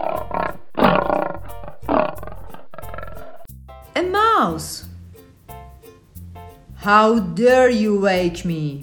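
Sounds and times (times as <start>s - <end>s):
lion roaring: 0.0s - 3.5s
speech: 4.4s - 4.8s, 6.8s - 8.8s.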